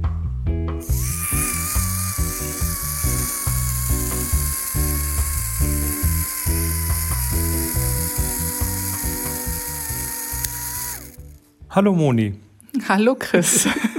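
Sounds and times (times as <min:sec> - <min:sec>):
mechanical camera self-timer whirring with clockwork rattle and high whine: 0:00.8 - 0:11.4
speech: 0:11.8 - 0:13.9.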